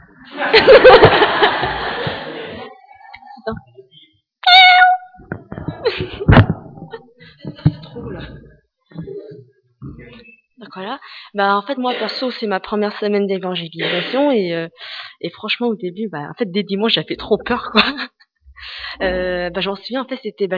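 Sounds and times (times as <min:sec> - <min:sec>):
laughter and chuckling from others: 0:00.1 - 0:03.6, 0:05.6 - 0:08.4, 0:17.4 - 0:19.2
person imitating a cat's meow: 0:04.4 - 0:05.2
speech: 0:10.8 - 0:18.1, 0:19.0 - 0:20.5.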